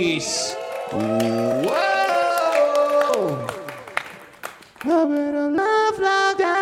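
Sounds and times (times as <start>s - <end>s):
speech: 0.0s - 1.9s, 4.8s - 6.1s
live audience clapping and cheering: 0.0s - 5.8s
loud sustained whoop: 0.4s - 4.0s.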